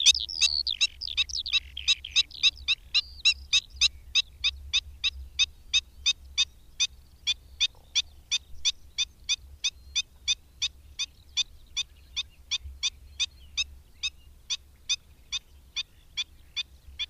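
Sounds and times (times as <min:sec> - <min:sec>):
Black-winged stilt sharp nasal yelping calls: 0:00.0 - 0:17.0.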